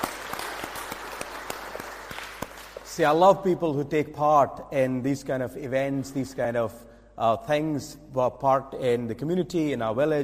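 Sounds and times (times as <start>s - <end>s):
audience applause for charity donors and collectors: 0.0s - 3.2s
speech: 3.0s - 10.2s.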